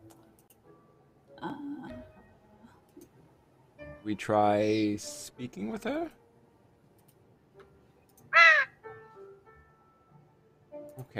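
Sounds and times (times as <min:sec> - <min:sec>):
speech: 0:04.0 - 0:06.2
raven giving a harsh caw: 0:08.3 - 0:08.8.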